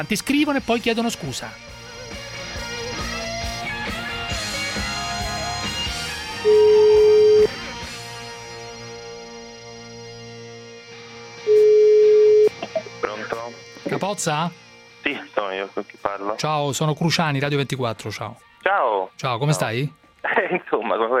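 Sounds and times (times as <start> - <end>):
speech: 0.0 - 1.7, 13.5 - 21.1
music: 0.0 - 21.1
telephone ringback tones of an outgoing call: 6.4 - 7.6, 11.5 - 12.5.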